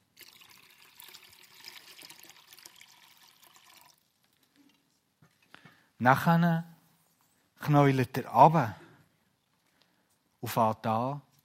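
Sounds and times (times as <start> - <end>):
water pouring into a basin for washing feet: 0.0 - 4.4
water dripping: 0.2 - 4.9
speech: 6.0 - 6.7, 7.7 - 8.8, 10.4 - 11.3.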